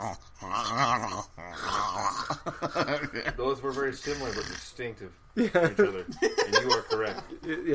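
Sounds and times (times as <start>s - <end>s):
human voice imitating a small dog choking and growling: 0.0s - 2.4s
laughter: 2.2s - 3.4s, 5.4s - 7.7s
speech: 2.4s - 7.7s.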